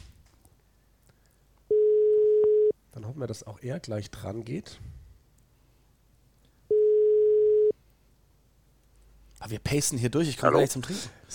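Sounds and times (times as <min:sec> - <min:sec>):
faint noise: 0:00.0 - 0:11.3
landline phone call ringback tone: 0:01.7 - 0:02.7, 0:06.7 - 0:07.8
speech: 0:03.2 - 0:05.0, 0:09.5 - 0:11.3.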